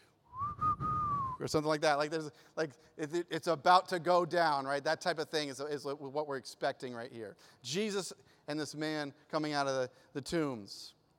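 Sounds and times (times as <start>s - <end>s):
lone whistled melody in the style of a Western showdown theme: 0.3s - 1.5s
speech: 1.4s - 11.0s.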